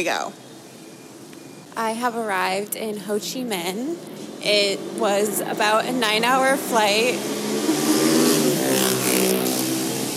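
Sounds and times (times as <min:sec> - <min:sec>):
speech: 0:00.0 - 0:00.4, 0:01.8 - 0:07.4
motorbike engines revving in busy street traffic in Ho Chi Minh City Vietnam: 0:02.2 - 0:10.1.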